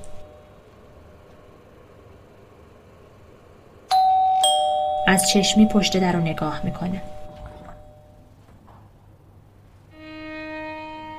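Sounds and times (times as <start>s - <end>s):
quiet hum: 0.0s - 11.1s
two-tone doorbell chime: 3.9s - 8.3s
speech: 5.1s - 7.2s.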